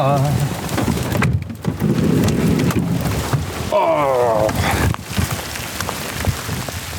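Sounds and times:
speech: 0.0 - 0.6
graupel pelting down: 0.0 - 6.9.

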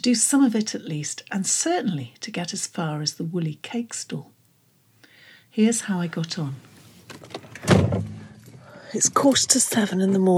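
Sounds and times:
speech: 0.0 - 4.3, 5.6 - 6.7, 8.9 - 10.3
car door thudding shut: 7.6 - 8.2.

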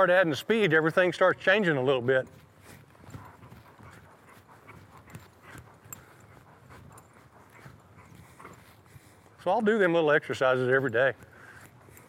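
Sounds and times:
speech: 0.0 - 2.5, 9.4 - 11.3
horse hooves at a slow trot: 0.0 - 12.0
faint breathing: 2.5 - 9.5, 11.2 - 12.0.

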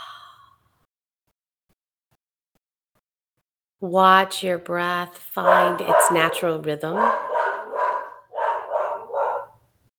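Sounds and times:
speech: 3.8 - 7.3
dog barking: 5.4 - 9.6.

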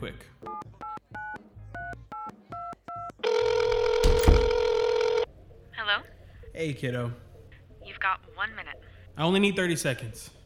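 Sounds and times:
speech: 0.0 - 0.6, 6.6 - 7.3, 8.0 - 10.4
telephone ringing tone over a hissy line: 3.2 - 5.3.

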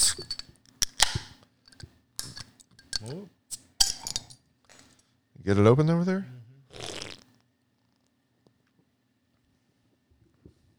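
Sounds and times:
12-fluid-ounce aluminum beer cans clinking together in a toast: 0.0 - 4.4
speech: 5.5 - 6.4.

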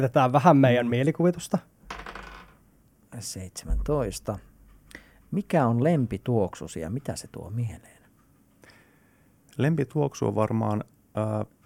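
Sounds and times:
speech: 0.0 - 1.8, 3.2 - 4.5, 5.3 - 8.0, 9.6 - 11.6
die rolled and clattering across a hard tabletop: 1.9 - 2.6.

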